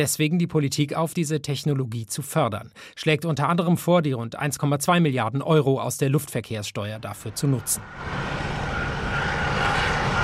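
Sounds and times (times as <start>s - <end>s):
speech: 0.0s - 8.4s
aircraft engine roar on an airport apron: 7.0s - 10.2s.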